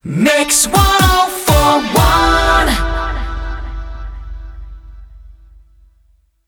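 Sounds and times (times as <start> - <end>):
rapid fire beat: 0.6 - 5.6.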